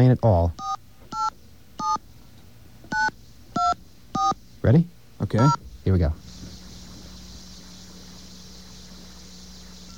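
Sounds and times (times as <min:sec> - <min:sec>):
speech: 0:00.0 - 0:00.8, 0:04.6 - 0:06.2
telephone keypad tones dialing an 800 number: 0:00.6 - 0:02.0.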